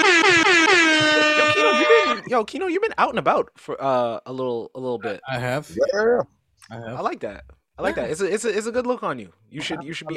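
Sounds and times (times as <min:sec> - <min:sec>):
air horn blasts: 0:00.0 - 0:02.3
laughter: 0:00.3 - 0:02.4, 0:09.6 - 0:10.1
speech: 0:02.3 - 0:10.1.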